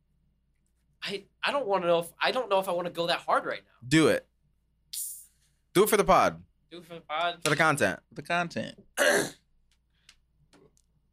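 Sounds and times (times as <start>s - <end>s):
speech: 1.1s - 4.3s, 5.8s - 9.4s
single sharp breathy sneeze: 9.0s - 9.4s.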